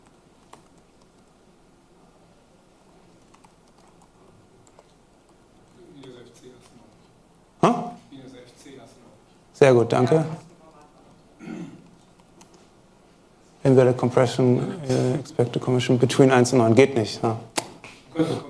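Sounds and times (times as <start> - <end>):
typing on a computer keyboard: 0.0 - 1.4, 3.2 - 5.4, 11.9 - 12.6
faint murmur: 1.9 - 15.8
speech: 9.6 - 10.4, 13.7 - 17.5, 18.2 - 18.4.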